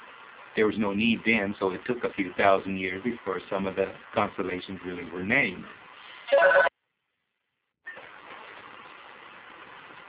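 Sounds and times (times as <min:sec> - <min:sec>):
speech: 0:00.6 - 0:06.7
telephone ringing: 0:06.3 - 0:06.7.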